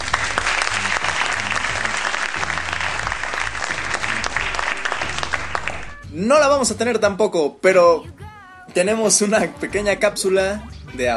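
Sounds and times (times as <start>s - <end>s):
large crowd applause: 0.0s - 6.0s
speech: 6.2s - 11.1s.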